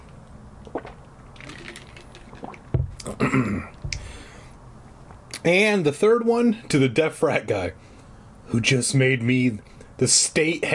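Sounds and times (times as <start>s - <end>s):
person gulping water: 0.6s - 4.2s
person sipping water: 0.6s - 4.2s
person exhaling: 3.0s - 4.5s
speech: 3.3s - 3.8s, 5.4s - 7.9s, 8.5s - 10.7s.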